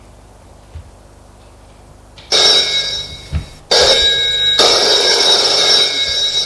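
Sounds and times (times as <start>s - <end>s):
telephone mechanical bell ringing in jangling bursts: 2.3s - 6.4s.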